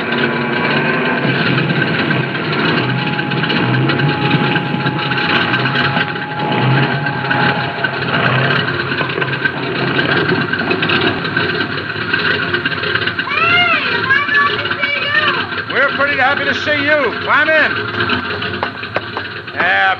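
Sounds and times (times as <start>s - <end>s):
small airplane engine landing on a road and idling: 0.0s - 19.9s
faint voices: 2.0s - 10.8s, 13.2s - 17.8s.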